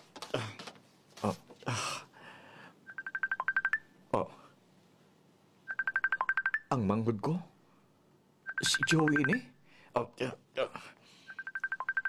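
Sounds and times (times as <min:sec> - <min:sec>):
speech: 0:01.2 - 0:01.9, 0:04.1 - 0:04.4, 0:06.8 - 0:07.5, 0:08.6 - 0:11.0
touch-tone beeps of a telephone number dialed on a keypad: 0:02.9 - 0:03.8, 0:05.7 - 0:06.7, 0:08.5 - 0:09.5, 0:11.3 - 0:12.0.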